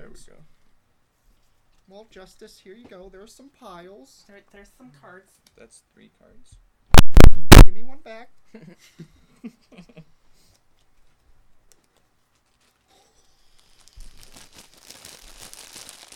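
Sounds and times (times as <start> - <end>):
speech: 0.2 - 0.6, 1.9 - 10.2
chicken ramen packet crinkling and rustling during a card game: 13.4 - 16.1.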